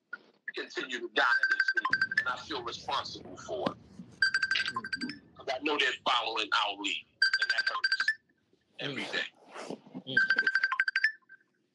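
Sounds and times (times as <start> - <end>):
speech: 0.6 - 3.8, 5.5 - 7.1, 8.8 - 9.4
phone ringtone beeping: 1.2 - 2.4, 4.2 - 5.4, 7.2 - 8.2, 10.2 - 11.6.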